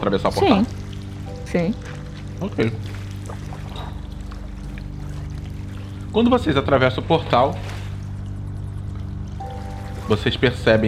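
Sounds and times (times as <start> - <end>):
speech: 0.0 - 0.8, 1.5 - 3.0, 6.1 - 7.7, 10.1 - 10.8
low droning hum: 0.0 - 10.8
piped water flowing: 0.0 - 10.8.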